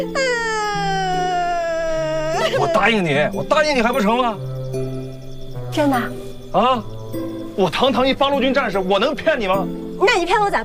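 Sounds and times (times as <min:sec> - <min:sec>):
speech: 0:00.0 - 0:00.4, 0:02.5 - 0:05.0, 0:05.7 - 0:10.6
person crying: 0:00.0 - 0:03.3.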